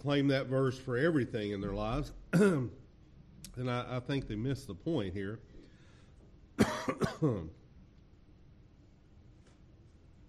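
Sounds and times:
speech: 0:00.0 - 0:02.8, 0:03.5 - 0:05.5, 0:06.6 - 0:07.6
man coughing from a tickle in his throat: 0:02.3 - 0:02.8, 0:06.6 - 0:07.6.

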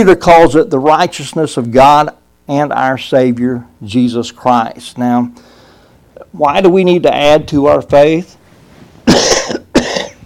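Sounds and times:
speech: 0:00.0 - 0:05.5, 0:06.3 - 0:08.4
harsh coughs: 0:09.0 - 0:10.2.

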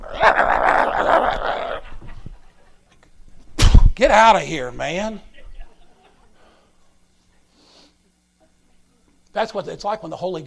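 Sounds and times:
person imitating a small Chihuahua-like dog growling and yapping: 0:00.0 - 0:02.0
speech: 0:04.0 - 0:05.3, 0:09.4 - 0:10.4.

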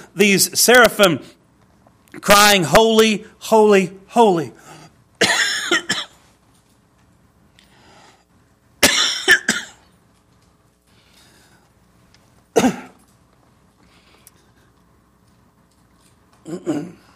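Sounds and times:
speech: 0:00.2 - 0:01.4, 0:02.2 - 0:04.6
preacher coughing from a catch in the throat: 0:05.2 - 0:06.2, 0:08.8 - 0:09.8, 0:12.5 - 0:13.0, 0:16.4 - 0:17.1.

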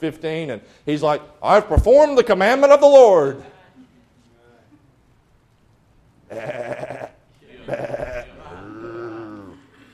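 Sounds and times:
speech: 0:00.0 - 0:03.5, 0:06.3 - 0:06.7
sheep bleating: 0:06.3 - 0:09.4.

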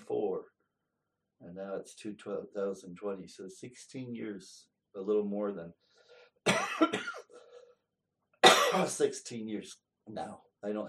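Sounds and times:
speech: 0:01.5 - 0:07.2, 0:08.7 - 0:10.8
harsh coughs in a small church with dry air: 0:06.5 - 0:07.5, 0:08.4 - 0:09.1.

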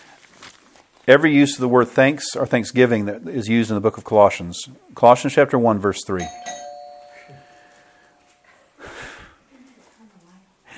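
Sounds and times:
speech: 0:01.0 - 0:06.6
electronic doorbell chime: 0:06.2 - 0:08.4
sharp breathy burst: 0:07.4 - 0:09.5.

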